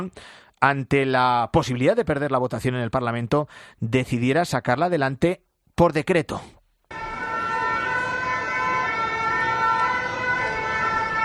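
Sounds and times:
speech: 0:00.0 - 0:06.6
ambulance sirens wailing in a city street in France: 0:06.9 - 0:11.2
roar of a busy city street in France during protests: 0:06.9 - 0:11.2.

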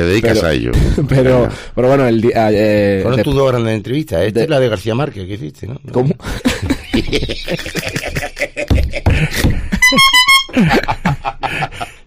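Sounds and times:
speech: 0:00.0 - 0:11.9
laughter: 0:06.2 - 0:12.0
car horn honking: 0:09.7 - 0:10.6.

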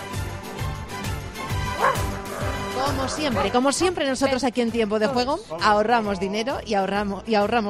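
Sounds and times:
dog barking in quick loud bursts: 0:01.7 - 0:03.6
speech: 0:02.9 - 0:07.6.

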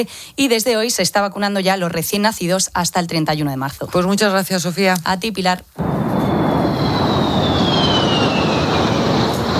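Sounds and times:
speech: 0:00.0 - 0:06.8
two airplanes rehearsing for an aerial parade flying over Madrid: 0:05.8 - 0:09.5.

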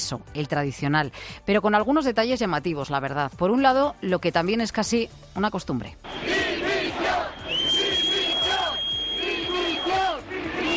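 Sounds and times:
speech: 0:00.1 - 0:06.4
large crowd booing and jeering: 0:06.1 - 0:10.7
thin steady whistle: 0:07.1 - 0:10.7.

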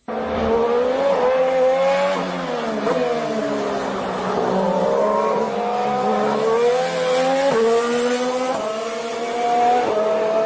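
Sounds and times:
Renault Formula One car engine racing: 0:00.0 - 0:10.4.

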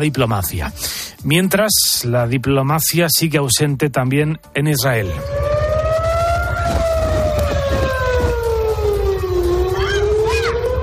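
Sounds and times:
speech: 0:00.0 - 0:05.6
air raid siren wailing: 0:05.0 - 0:10.8
dense low rumbling noise: 0:05.0 - 0:10.8.

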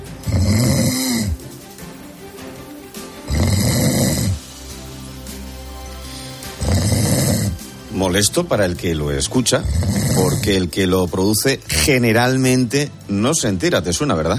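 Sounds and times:
loud snoring: 0:00.0 - 0:01.4, 0:03.2 - 0:04.5, 0:06.2 - 0:07.7, 0:09.4 - 0:10.7
speech: 0:08.1 - 0:14.3.

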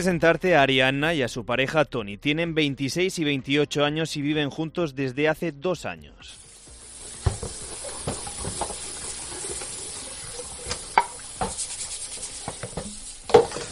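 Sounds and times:
speech: 0:00.0 - 0:06.4
running water in a sink: 0:06.4 - 0:13.7.

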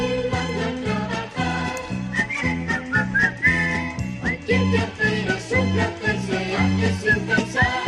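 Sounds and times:
bouncy orchestral accompaniment with a march-like beat: 0:00.0 - 0:07.8
person whistling a cheerful tune from an animated film: 0:02.1 - 0:05.9, 0:06.8 - 0:07.8.

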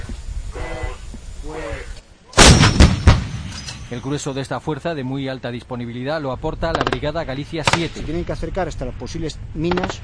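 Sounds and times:
artillery piece firing Blitz ammunition at a NATO exercise near Zaragoza: 0:02.4 - 0:03.9
speech: 0:03.9 - 0:10.0.

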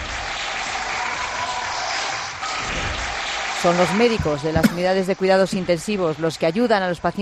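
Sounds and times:
healthcare workers applauding outside hospital: 0:00.0 - 0:05.2
speech: 0:03.6 - 0:07.2.

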